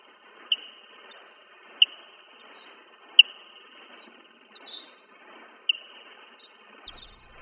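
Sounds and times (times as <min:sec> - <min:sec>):
slowed-down barbastelle bat echolocation chirps: 0:00.0 - 0:07.3
thin hiss: 0:06.9 - 0:07.3.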